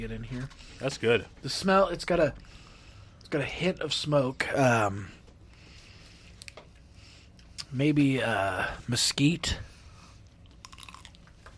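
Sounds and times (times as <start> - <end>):
speech: 0.0 - 2.6, 3.3 - 5.2, 7.7 - 9.7
softer chewing sounds: 10.2 - 11.5
crisp crunch of biting smoked sausage: 10.4 - 11.4.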